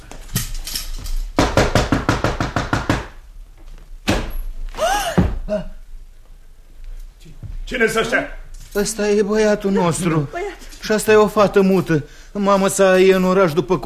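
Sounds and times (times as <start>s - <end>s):
knocking on a door: 1.4s - 3.2s
heavy thud: 4.0s - 5.6s
brief gasping voice: 4.8s - 5.8s
speech: 7.7s - 13.8s.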